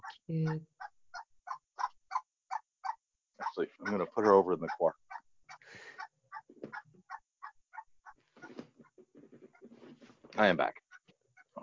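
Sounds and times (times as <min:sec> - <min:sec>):
chicken clucking: 0:00.0 - 0:08.7
speech: 0:00.3 - 0:00.8, 0:03.6 - 0:05.0, 0:10.4 - 0:10.8.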